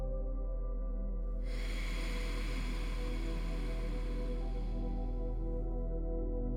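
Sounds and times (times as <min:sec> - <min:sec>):
low hum: 0:00.0 - 0:06.5
slow deep breath in: 0:01.4 - 0:06.1.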